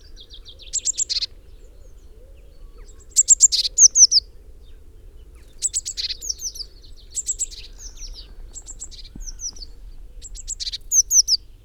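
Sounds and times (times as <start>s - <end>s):
Eurasian blue tit Cyanistes caeruleus calling with high ticks and downslurred notes: 0.2s - 2.0s, 2.7s - 4.3s, 5.3s - 11.5s.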